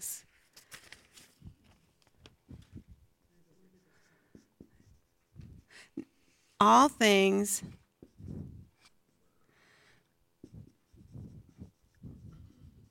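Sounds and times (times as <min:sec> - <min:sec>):
papers being shuffled: 0:00.4 - 0:02.7
speech: 0:06.6 - 0:07.8.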